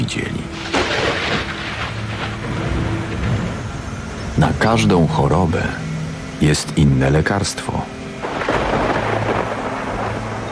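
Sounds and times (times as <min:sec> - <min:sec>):
heavy rain in a violent thunderstorm: 0:00.0 - 0:10.5
speech: 0:00.1 - 0:00.7, 0:04.4 - 0:08.0
deep thunder rumbling in a violent thunderstorm: 0:00.2 - 0:05.1, 0:08.2 - 0:10.5.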